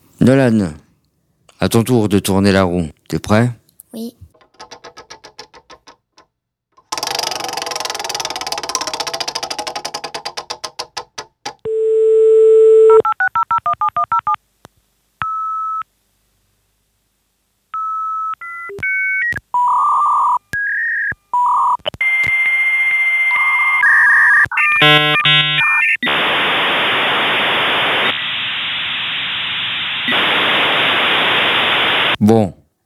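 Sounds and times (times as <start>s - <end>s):
speech: 0.2s - 0.8s, 1.6s - 4.2s
dial-up modem dial tone: 11.7s - 14.4s, 17.8s - 26.0s
56K dial-up modem ringing chirps, screeches and pulsing tones: 22.9s - 28.2s, 29.9s - 32.2s
long loud hiss of modem static: 24.8s - 32.2s.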